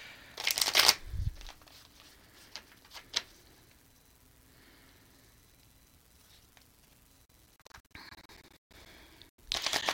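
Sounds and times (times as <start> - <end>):
tarot cards being shuffled: 0.4 - 3.3, 9.5 - 9.9.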